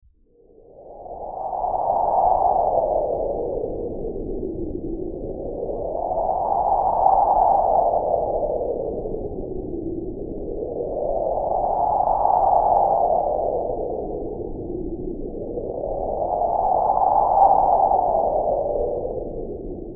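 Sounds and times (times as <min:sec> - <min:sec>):
eerie ambient wind for horror: 0:00.2 - 0:19.9.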